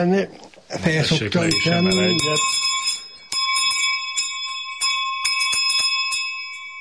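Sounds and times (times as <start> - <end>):
speech: 0.0 - 2.6
sheep bells clanging: 1.4 - 6.7.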